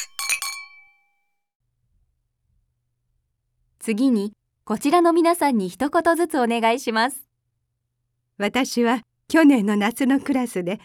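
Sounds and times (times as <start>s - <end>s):
glasses clinking during a toast: 0.0s - 1.1s
speech: 3.9s - 7.3s, 8.4s - 10.8s.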